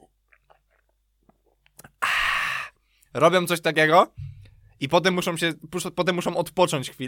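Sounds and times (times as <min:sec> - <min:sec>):
person imitating a baby gulping with mouth clicks and swallowing: 0:00.0 - 0:02.7
sudden loud breathy exhale: 0:02.0 - 0:02.8
speech: 0:03.1 - 0:04.2, 0:04.8 - 0:07.0.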